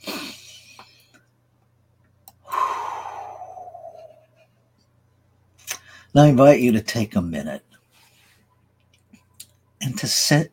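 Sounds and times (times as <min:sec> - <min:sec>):
group taking a deep breath in a guided breathing exercise: 0:02.4 - 0:04.4
speech: 0:06.1 - 0:07.7, 0:10.0 - 0:10.5.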